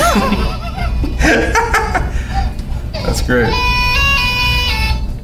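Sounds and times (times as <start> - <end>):
laughter: 0.0 - 2.6
speech: 0.2 - 0.4, 3.3 - 3.7
phone ringtone: 3.5 - 5.0.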